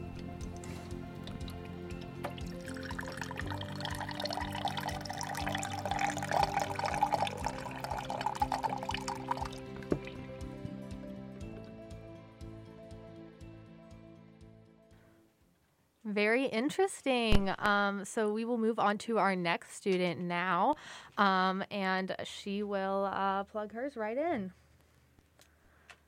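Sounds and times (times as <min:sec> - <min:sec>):
filtered water pouring from a filter container tap into a cup: 0:00.6 - 0:10.2
speech: 0:16.2 - 0:24.6.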